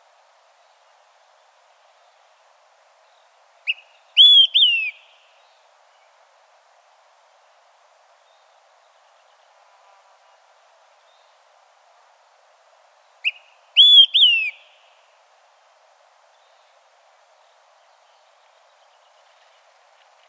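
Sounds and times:
Olive-sided Flycatcher Contopus cooperi singing whistled phrase: 3.7 - 5.1, 13.2 - 14.8.

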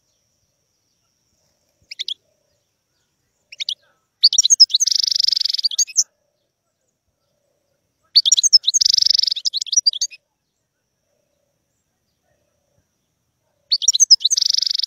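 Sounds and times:
European goldfinch song with tinkling calls and buzzy trills: 0.0 - 14.8.

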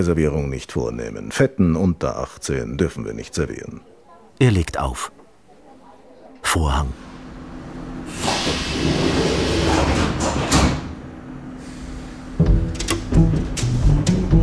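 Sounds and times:
speech: 0.0 - 5.2, 6.5 - 7.1
steady rumble and hiss of a moving subway train inside the carriage: 7.0 - 14.3
subway train clunks: 8.1 - 13.8.

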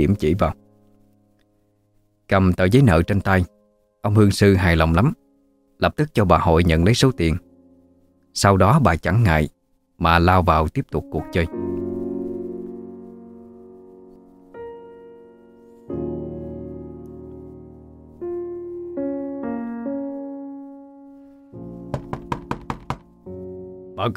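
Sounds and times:
speech: 0.0 - 0.6, 2.3 - 5.2, 5.8 - 7.5, 8.4 - 11.8
pounding on a door from outside the gate: 21.9 - 23.1.

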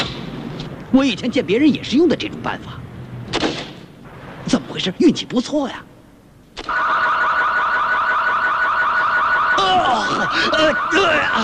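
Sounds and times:
speech: 0.9 - 2.8, 4.8 - 5.9, 9.6 - 11.4
car alarm: 6.7 - 11.4.

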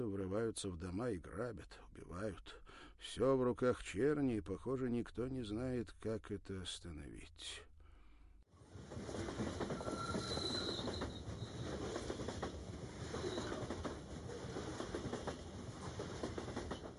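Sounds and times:
speech: 0.0 - 7.7
steam train carriage rumbling and rattling as the train gains speed: 8.7 - 16.9
faint high steam train wheel squeal: 9.6 - 11.9, 13.1 - 13.7.

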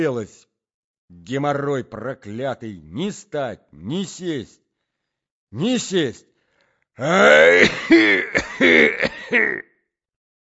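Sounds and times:
speech: 0.0 - 0.5, 1.1 - 4.6, 5.5 - 6.3, 7.0 - 9.7
old man clearing his throat: 7.0 - 9.6
old man coughing hoarsely: 7.2 - 9.6.

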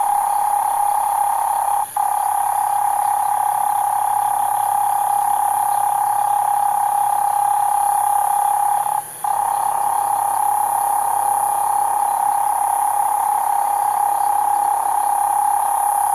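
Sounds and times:
cane toad trill at night in Australia: 0.0 - 16.1.

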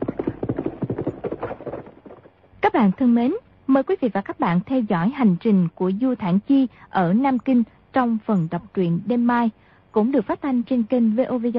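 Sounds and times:
horse hooves galloping as its rider whips it on: 0.0 - 3.1
speech: 2.7 - 11.5.

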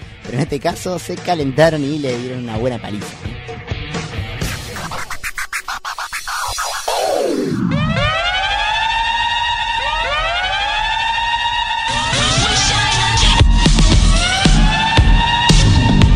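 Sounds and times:
speech: 0.3 - 3.7
siren wailing: 4.6 - 16.1.

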